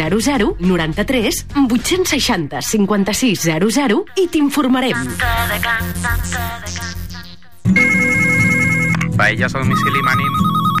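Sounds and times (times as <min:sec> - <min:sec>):
speech: 0:00.0 - 0:06.9, 0:09.2 - 0:10.6
telephone ringing with electronic trill: 0:07.7 - 0:10.7.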